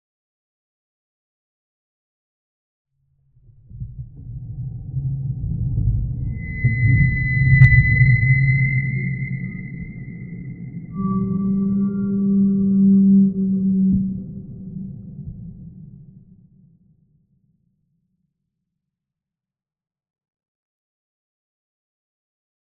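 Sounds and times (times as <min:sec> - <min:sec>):
designed cinematic metallic trailer riser: 0:05.1 - 0:14.1.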